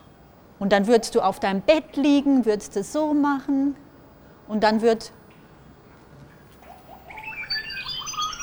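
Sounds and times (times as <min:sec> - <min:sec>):
speech: 0:00.6 - 0:03.8, 0:04.5 - 0:05.2
bird chirping and twittering: 0:06.4 - 0:08.4.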